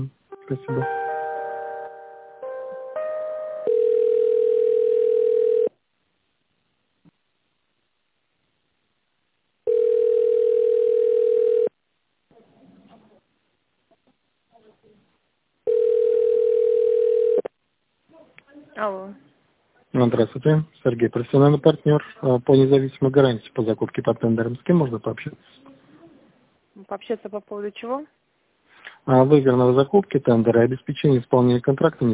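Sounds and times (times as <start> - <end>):
speech: 0.0 - 1.0, 20.1 - 25.6, 26.9 - 28.2, 29.0 - 32.1
brief stepped telephone tone melody while a call is transferred: 0.3 - 5.7, 9.7 - 11.7, 15.7 - 17.5
long even telephone ringback tones: 3.5 - 5.7, 9.7 - 11.7, 15.7 - 17.5.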